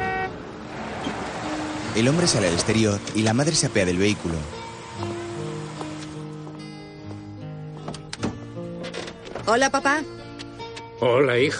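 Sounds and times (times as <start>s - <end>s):
brief car horn toot: 0.0s - 0.4s
car engine rumble as the car pulls up and stops: 0.0s - 6.6s
car road noise: 0.0s - 10.8s
speech: 2.0s - 5.1s, 9.5s - 10.2s, 11.0s - 11.5s.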